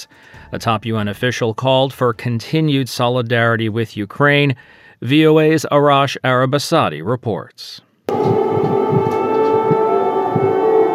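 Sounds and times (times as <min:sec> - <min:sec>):
speech: 0:00.0 - 0:08.2
air raid siren wailing: 0:08.1 - 0:10.9.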